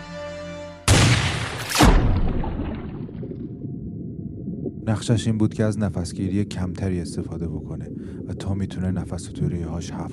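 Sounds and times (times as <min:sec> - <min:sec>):
starting gun shot fired by a referee for a children's swimming race: 0:00.9 - 0:03.0
booming burst: 0:00.9 - 0:03.6
speech: 0:04.9 - 0:10.1.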